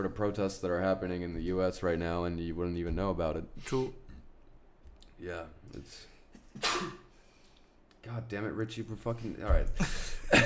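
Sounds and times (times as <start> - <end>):
speech: 0.0 - 4.0, 5.2 - 7.0, 8.0 - 10.4
sneeze: 6.4 - 7.2.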